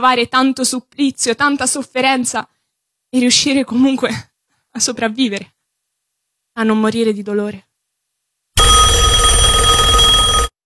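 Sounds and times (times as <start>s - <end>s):
speech: 0.0s - 5.6s, 6.6s - 7.7s
telephone bell ringing: 8.6s - 10.6s.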